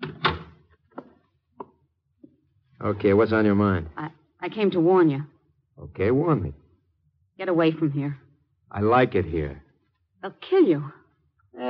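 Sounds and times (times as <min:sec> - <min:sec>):
door swinging shut with solid double thump: 0:00.0 - 0:00.6
speech: 0:02.8 - 0:06.6, 0:07.4 - 0:09.6, 0:10.2 - 0:11.0.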